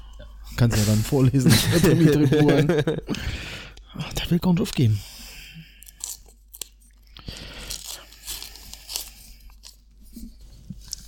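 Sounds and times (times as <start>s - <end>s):
speech: 0.6s - 5.1s
laughter: 1.3s - 3.2s
paper envelope being torn open: 7.6s - 9.8s.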